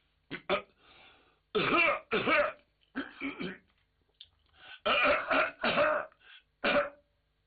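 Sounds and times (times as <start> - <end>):
man imitating throat clears: 0.3 - 0.7, 1.6 - 3.6, 4.9 - 7.0
man imitating deliberate attention-getting coughs: 1.6 - 3.6, 4.9 - 7.0.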